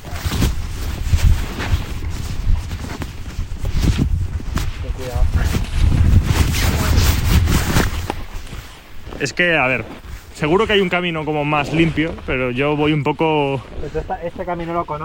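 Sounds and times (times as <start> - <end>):
phone rustling and scraping inside a trouser pocket: 0.0 - 10.4
speech: 9.2 - 15.0.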